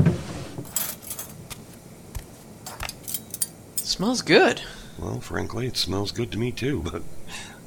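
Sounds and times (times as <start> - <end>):
drawer sliding open with a low thud: 0.0 - 1.3
silverware clinking and rattling while being handled: 0.6 - 1.5, 2.6 - 4.0
speech: 4.0 - 7.6.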